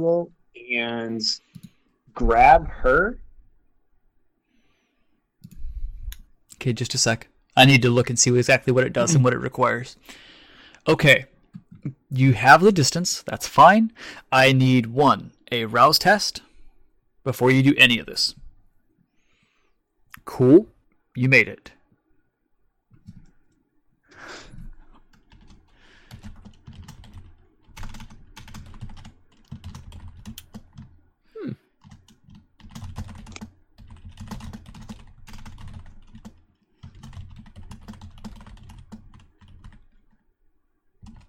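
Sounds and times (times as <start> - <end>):
speech: 0.0 - 1.5, 2.2 - 3.2, 6.6 - 16.5, 17.2 - 18.4, 20.2 - 21.8
rapid typing on a computer keyboard: 25.1 - 31.0, 31.8 - 40.2, 41.0 - 41.2.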